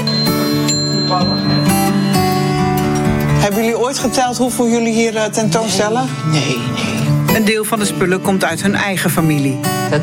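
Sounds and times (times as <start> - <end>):
old wall clocks chiming in a farm life display: 0.0 - 2.9
speech: 3.5 - 10.0.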